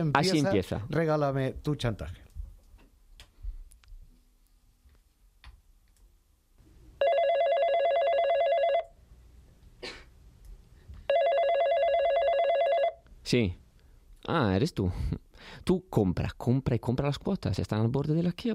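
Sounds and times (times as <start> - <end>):
speech: 0.0 - 2.2, 13.3 - 13.6, 14.2 - 18.5
electronic telephone ringing at opening of stage play: 7.0 - 9.0, 11.1 - 13.0.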